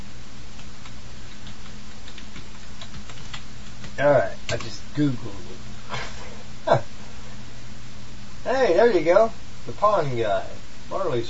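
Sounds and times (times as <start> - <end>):
typing on a computer keyboard: 0.6 - 4.7
speech: 4.0 - 6.0, 8.5 - 11.2.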